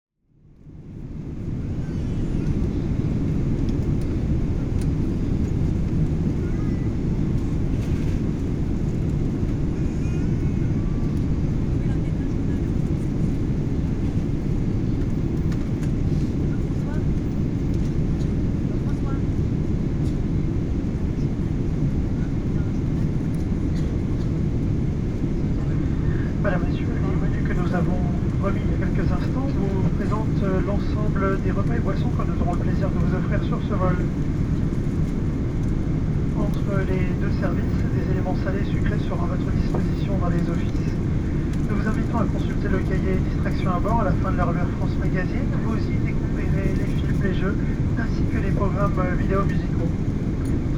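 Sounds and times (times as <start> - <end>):
Boeing 777 inflight cabin ambience: 0.3 - 50.7.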